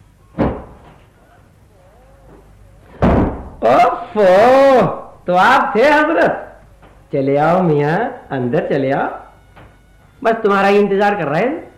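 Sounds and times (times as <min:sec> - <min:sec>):
wooden door being opened with thumps and clunks: 0:00.4 - 0:01.0, 0:02.9 - 0:03.6, 0:09.6 - 0:09.8
faint indistinct voices murmuring: 0:01.2 - 0:03.0
speech: 0:03.7 - 0:06.4, 0:07.1 - 0:09.2, 0:10.2 - 0:11.7.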